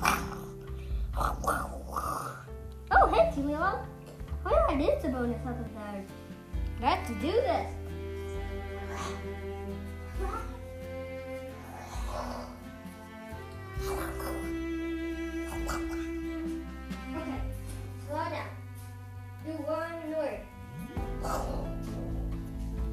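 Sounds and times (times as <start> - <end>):
voice imitating a dragon's low growl: 0.0 - 2.5, 13.8 - 14.5, 20.7 - 22.2
steady droning low background: 0.0 - 22.9
speech: 3.4 - 6.2, 6.8 - 8.0.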